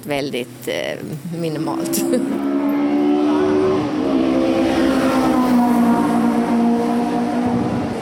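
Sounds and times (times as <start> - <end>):
speech: 0.0 - 2.5
race car engine roaring past on race track straight: 1.7 - 8.0.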